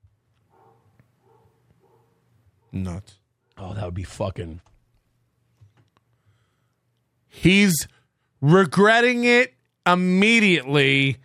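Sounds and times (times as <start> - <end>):
dog barking: 0.5 - 2.8
speech: 2.7 - 4.7, 7.3 - 11.2.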